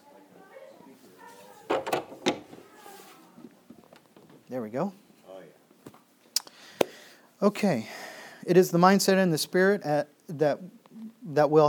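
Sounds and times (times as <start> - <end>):
doors being closed: 1.6 - 2.7
speech: 4.5 - 5.0, 7.4 - 11.6.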